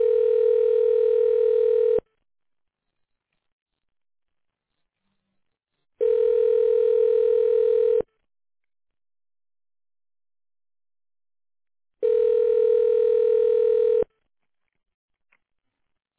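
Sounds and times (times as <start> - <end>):
telephone ringback tone during call transfer: 0.0 - 2.0, 6.0 - 8.0, 12.0 - 14.1.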